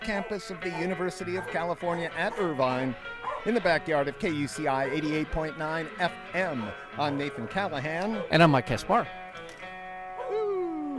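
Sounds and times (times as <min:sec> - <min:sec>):
speech: 0:00.0 - 0:09.2
small male pet dog whimpering: 0:10.2 - 0:10.9.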